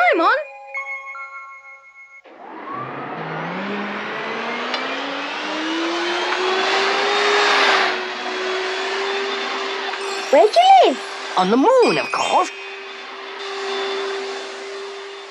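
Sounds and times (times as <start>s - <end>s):
short tinkling chime: 0.4s - 2.2s
flying vacuum cleaner motor starting up and revving: 2.3s - 15.3s
speech: 10.4s - 12.6s.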